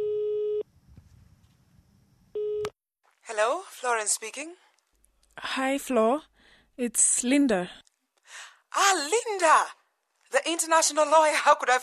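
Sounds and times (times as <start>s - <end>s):
telephone call tone after dialing from a public phone booth: 0.0s - 0.6s, 2.4s - 2.7s
speech: 3.3s - 4.6s, 5.4s - 11.8s.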